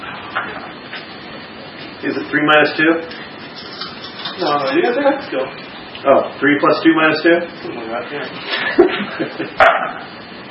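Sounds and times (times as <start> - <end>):
speech: 2.0 - 3.2, 4.4 - 9.8
laughter: 8.4 - 9.7
dog barking: 9.6 - 10.0.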